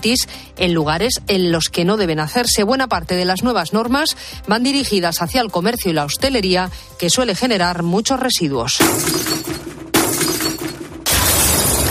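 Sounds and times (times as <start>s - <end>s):
speech: 0.0s - 9.7s
glass bottles crashing and shattering into a recycling bin: 8.8s - 11.8s.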